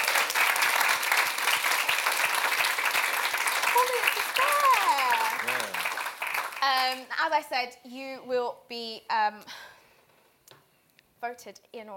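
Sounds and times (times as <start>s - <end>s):
live show audience clapping: 0.0s - 7.1s
speech: 6.8s - 9.7s, 11.2s - 11.9s.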